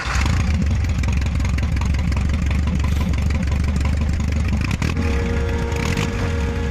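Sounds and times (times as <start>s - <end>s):
Zaporozhets car engine running: 0.0s - 6.6s.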